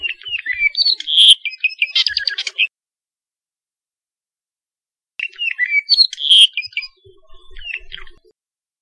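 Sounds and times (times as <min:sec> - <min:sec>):
apapane song along Saddle Road in Hawaii: 0:00.0 - 0:02.7, 0:05.2 - 0:08.2.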